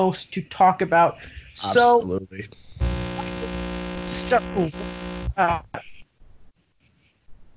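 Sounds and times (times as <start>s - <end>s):
speech: 0.0s - 2.6s, 4.1s - 5.9s
garbled voice: 1.2s - 6.0s
harsh buzzing microphone distortion: 1.4s - 2.0s, 2.6s - 6.0s.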